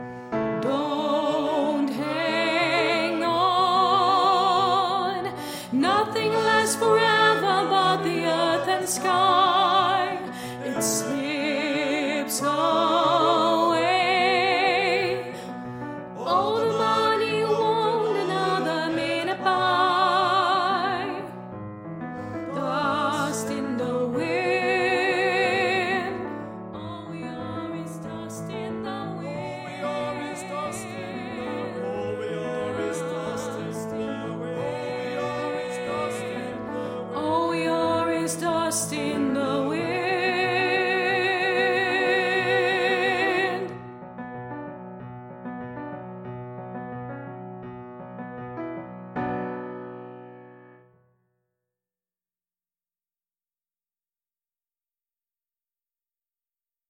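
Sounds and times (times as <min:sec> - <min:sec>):
soprano singing: 0:00.5 - 0:21.5, 0:22.2 - 0:43.9.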